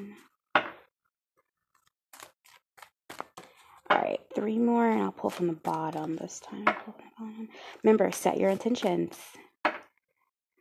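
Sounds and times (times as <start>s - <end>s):
deck of cards being shuffled: 1.7s - 3.9s, 4.8s - 6.5s, 7.9s - 9.3s
speech: 3.9s - 9.4s.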